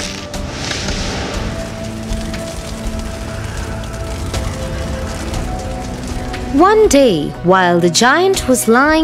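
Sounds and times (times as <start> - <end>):
low constant rush of wind: 0.4 - 7.5
hail rattling on a slate castle roof: 1.4 - 7.1
speech: 6.5 - 9.0.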